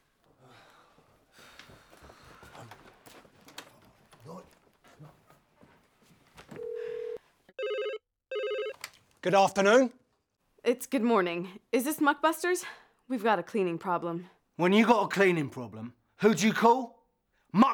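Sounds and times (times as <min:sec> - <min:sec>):
telephone ringing: 0:06.5 - 0:08.9
speech: 0:09.2 - 0:10.0, 0:10.6 - 0:17.7.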